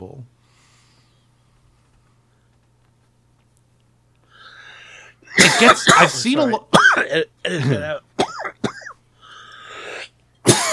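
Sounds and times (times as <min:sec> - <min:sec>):
person coughing and clearing throat: 0:05.3 - 0:09.0, 0:09.9 - 0:10.7
speech: 0:05.6 - 0:08.1.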